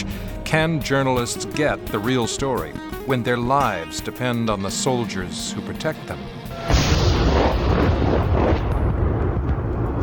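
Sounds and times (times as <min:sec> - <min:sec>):
speech: 0:00.0 - 0:06.9
incoming gunfire and artillery fire in a war zone: 0:06.6 - 0:10.0.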